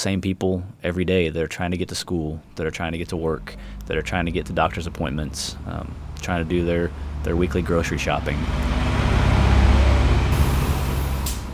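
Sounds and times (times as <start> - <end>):
speech: 0.0 - 8.9
city bus engine idling at a terminal: 3.2 - 11.5
brief hiss of bus air brakes: 10.3 - 11.5.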